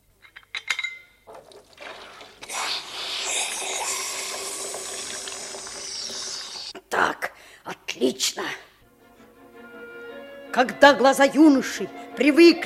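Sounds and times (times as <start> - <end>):
hot metal samovar clinking and knocking: 0.2 - 1.5
water poured over hot samovar hissing and sizzling: 1.4 - 6.7
speech: 8.0 - 8.7, 10.6 - 12.6.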